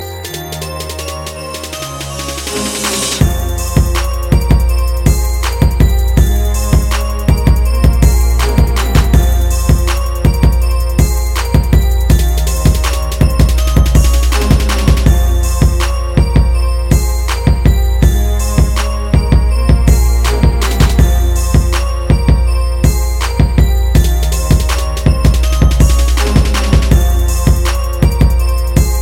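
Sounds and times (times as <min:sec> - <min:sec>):
bass ringing: 0:00.0 - 0:29.0.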